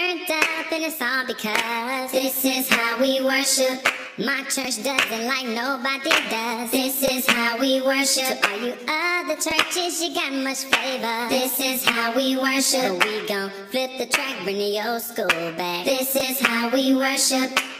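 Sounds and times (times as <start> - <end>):
choir singing ah: 0.1 - 3.9, 4.6 - 17.6.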